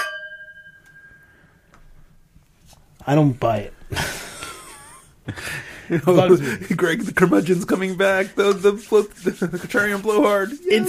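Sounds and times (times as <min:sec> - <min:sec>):
glasses clinking together in a toast: 0:00.0 - 0:01.4
speech: 0:03.1 - 0:04.2, 0:05.3 - 0:10.8.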